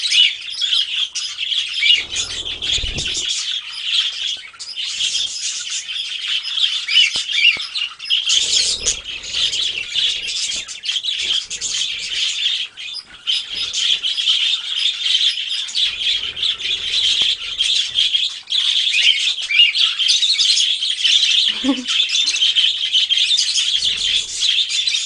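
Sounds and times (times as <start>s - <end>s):
flock of budgerigars chirping and twittering: 0.0s - 25.0s
low fluttering or rustling: 1.7s - 3.5s, 8.3s - 14.2s, 15.8s - 18.2s.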